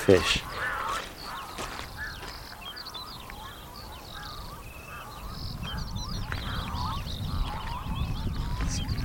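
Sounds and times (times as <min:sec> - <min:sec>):
speech: 0:00.0 - 0:00.7
chorus of unusual bird chirps squawks and honking cries: 0:00.0 - 0:09.0
steady low rumble of wind or surf: 0:03.7 - 0:09.0.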